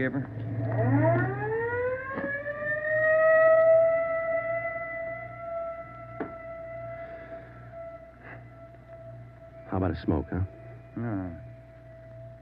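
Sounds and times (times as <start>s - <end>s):
speech: 0.0s - 1.1s, 9.7s - 11.5s
ambulance siren wailing: 0.0s - 12.3s
low engine rumble: 0.0s - 12.3s
sharp knocks: 6.2s - 6.4s.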